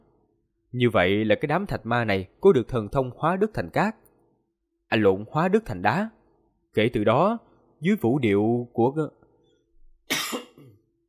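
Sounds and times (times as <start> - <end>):
speech: 0.7 - 4.0, 4.9 - 6.2, 6.8 - 9.2
person coughing with phlegm in the throat: 10.1 - 10.8.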